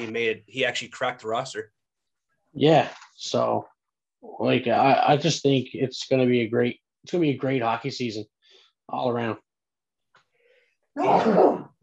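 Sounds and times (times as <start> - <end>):
speech: 0.0 - 1.8, 2.5 - 8.3, 8.9 - 9.4, 11.0 - 11.8
person sneezing loudly: 11.0 - 11.7.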